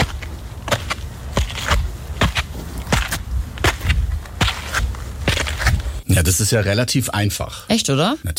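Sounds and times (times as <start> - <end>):
footsteps climbing stone stairs up a hill in Heidelberg: 0.0 - 6.0
constant noisy outdoor background: 0.0 - 8.3
speech: 6.2 - 8.3.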